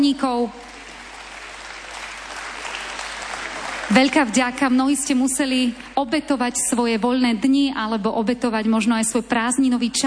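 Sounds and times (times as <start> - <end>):
speech: 0.0 - 0.7, 3.9 - 10.0
crowd applause thanking event organizers, coordinators and volunteers: 0.6 - 4.4.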